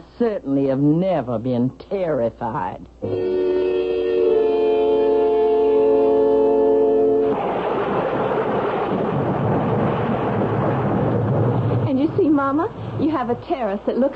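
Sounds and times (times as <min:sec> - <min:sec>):
steady humming tone: 0:00.0 - 0:14.1
speech: 0:00.2 - 0:03.6, 0:12.5 - 0:14.1
heavy rain: 0:07.0 - 0:14.1
deep rolling rumble of thunder: 0:07.2 - 0:14.1.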